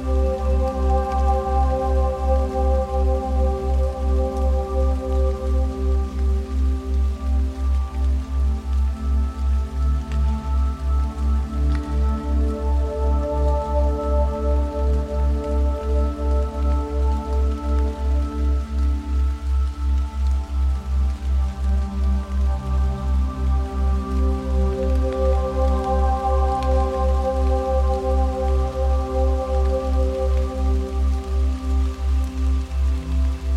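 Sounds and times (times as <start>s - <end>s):
calming ambient music with deep even pulse: 0.0s - 33.5s
light rain falling: 0.0s - 33.5s.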